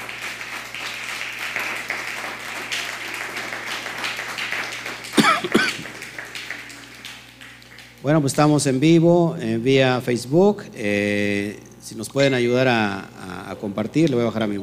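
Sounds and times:
applause from a group: 0.0s - 8.4s
speech: 5.4s - 5.7s, 8.0s - 14.6s.

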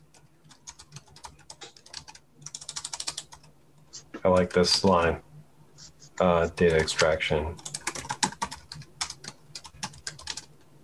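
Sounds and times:
typing on a computer keyboard: 0.0s - 3.5s, 6.6s - 10.6s
speech: 4.2s - 5.3s, 6.2s - 7.7s.

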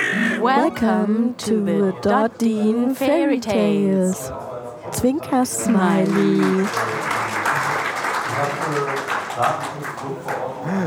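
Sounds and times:
speech: 0.4s - 7.2s, 8.4s - 10.8s
applause clapping: 5.6s - 10.8s.

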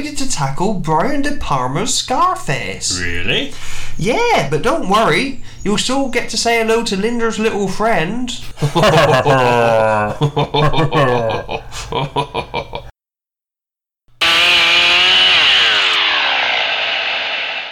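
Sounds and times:
speech: 0.1s - 12.8s
laughter: 8.6s - 12.9s
several chainsaw engines sputtering and revving: 14.2s - 17.6s.

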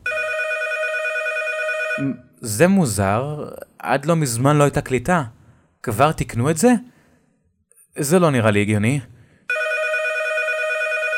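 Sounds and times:
telephone ringing in a sustained electronic tone: 0.0s - 2.2s, 9.5s - 11.1s
speech: 2.0s - 6.9s, 8.0s - 9.1s.

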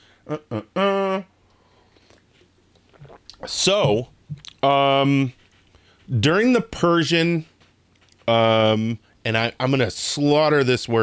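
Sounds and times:
brief satisfied hum: 0.0s - 6.2s
speech: 0.3s - 0.9s, 3.4s - 5.4s, 6.1s - 7.5s, 8.3s - 11.0s
person swallowing coffee: 2.8s - 4.6s.

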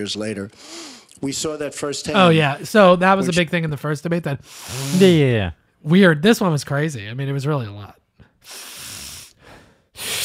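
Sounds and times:
speech: 0.0s - 8.7s
heavy breathing into a microphone: 0.6s - 1.1s, 4.4s - 5.2s, 8.2s - 10.2s.

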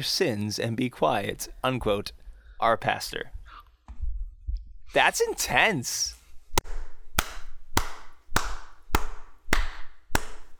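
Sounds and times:
speech: 0.0s - 3.4s, 4.9s - 6.2s
slow hand claps by a single person: 6.6s - 10.5s.

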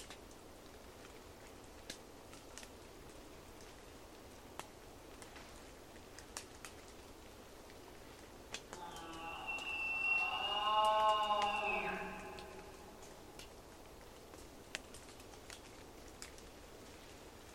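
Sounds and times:
scattered sharp drips in a wet rainforest valley: 0.0s - 17.5s
steady soft hiss in a wet rainforest valley: 0.0s - 17.5s
elk call in a rainforest valley: 8.8s - 13.2s
traffic funneled up the valley: 8.8s - 13.3s.

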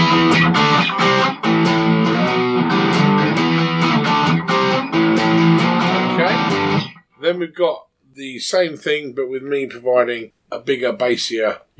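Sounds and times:
distorted guitar chord riff in a lesson: 0.0s - 7.1s
speech: 7.4s - 11.7s.

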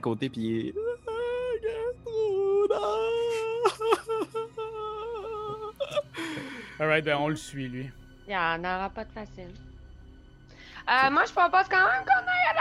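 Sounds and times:
speech: 0.0s - 0.8s, 6.8s - 9.7s, 10.9s - 12.3s
woman wailing and crying: 0.8s - 6.8s.

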